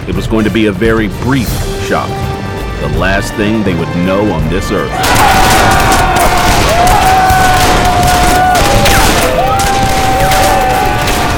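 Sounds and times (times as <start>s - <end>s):
speech: 0.0s - 5.9s
heavy gunfire from two men firing at a racing rider: 5.0s - 11.3s.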